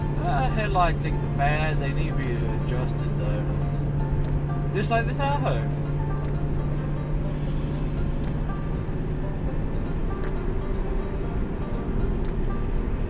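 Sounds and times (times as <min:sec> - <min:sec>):
road and engine rumble inside a moving Mustang with lowering springs and catback exhaust: 0:00.0 - 0:13.0
speech: 0:00.5 - 0:03.7, 0:04.7 - 0:05.8.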